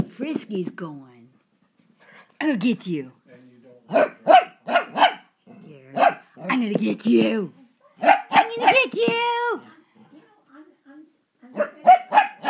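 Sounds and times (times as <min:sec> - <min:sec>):
speech: 0:00.2 - 0:01.2, 0:02.4 - 0:03.2, 0:03.9 - 0:04.4, 0:06.4 - 0:08.2, 0:08.8 - 0:09.7
small female dog barking playfully: 0:03.9 - 0:05.2, 0:08.0 - 0:09.7, 0:11.6 - 0:12.4
person talking excitedly while playing with a dog: 0:08.4 - 0:09.6.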